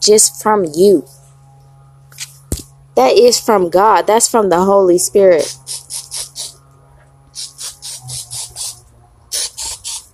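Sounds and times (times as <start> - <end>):
speech: 0.0 - 1.2, 3.0 - 6.0
low steady hum: 0.0 - 10.1
spray hissing in short bursts: 5.4 - 6.6, 7.3 - 10.1.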